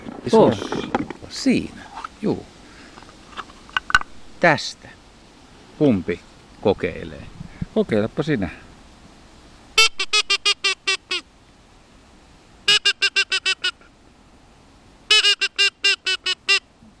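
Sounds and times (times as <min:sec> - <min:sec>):
speech: 0:00.2 - 0:02.5, 0:04.4 - 0:05.0, 0:05.8 - 0:08.6
duck call whistle blown in sharp nasal quacks: 0:09.8 - 0:11.3, 0:12.7 - 0:13.9, 0:15.1 - 0:16.7.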